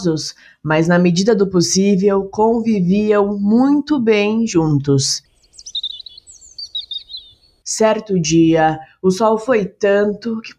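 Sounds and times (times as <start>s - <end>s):
speech: 0.0s - 5.3s, 7.8s - 10.5s
flock of birds chirping and twittering: 4.2s - 8.8s.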